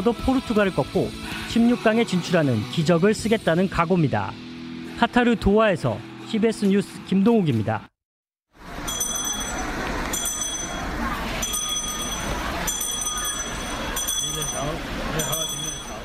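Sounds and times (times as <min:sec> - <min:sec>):
speech: 0:00.0 - 0:04.4, 0:05.0 - 0:07.9
busy street noise: 0:00.0 - 0:07.9, 0:08.6 - 0:16.0
charity kettle handbell ringing during December street fundraising: 0:08.8 - 0:16.0
crowd murmur: 0:09.0 - 0:16.0.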